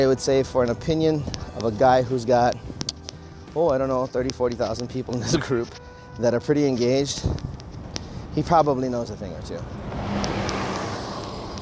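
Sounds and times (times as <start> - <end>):
speech: 0.0 - 2.7, 3.6 - 7.5, 8.4 - 10.0
school bus driving past with engine and tire noise: 9.5 - 11.6.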